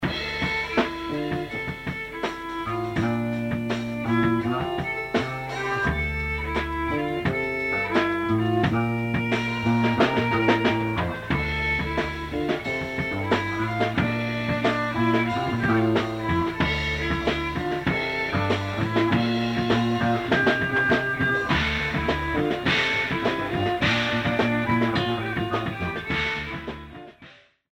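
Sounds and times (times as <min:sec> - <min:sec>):
double bass: 0:00.0 - 0:27.0
violin: 0:00.0 - 0:27.3.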